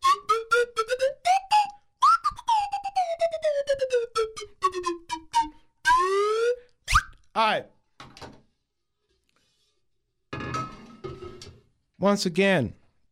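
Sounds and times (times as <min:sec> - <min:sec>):
slide whistle tooting: 0:00.0 - 0:07.2
speech: 0:07.4 - 0:07.7, 0:12.0 - 0:12.8.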